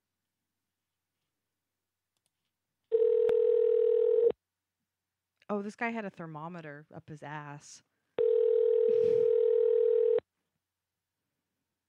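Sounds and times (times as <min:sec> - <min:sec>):
telephone dial tone as a call is placed: 0:02.9 - 0:04.3, 0:08.2 - 0:10.2
speech: 0:05.6 - 0:07.9.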